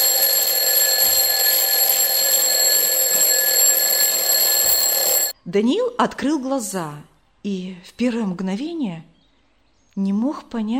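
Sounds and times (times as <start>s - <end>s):
alarm clock ringing: 0.0s - 5.4s
speech: 5.5s - 9.1s, 10.0s - 10.7s.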